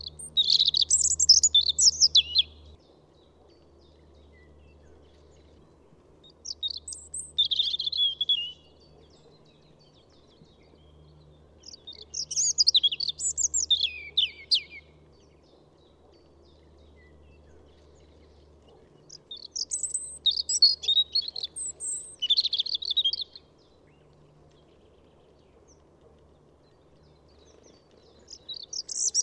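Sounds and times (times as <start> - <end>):
European robin singing: 0.0 - 2.8, 6.2 - 15.0, 19.0 - 24.0, 27.0 - 29.2.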